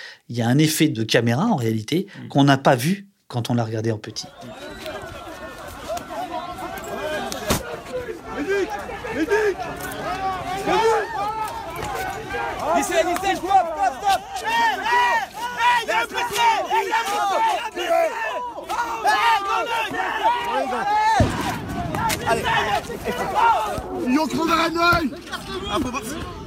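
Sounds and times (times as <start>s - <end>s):
speech: 0.3s - 4.8s, 12.7s - 18.2s, 22.2s - 26.4s
chaotic protest crowd shouting at Place de la Bastille: 4.2s - 26.4s
laughter: 4.3s - 26.4s
sharp bang: 21.2s - 23.2s.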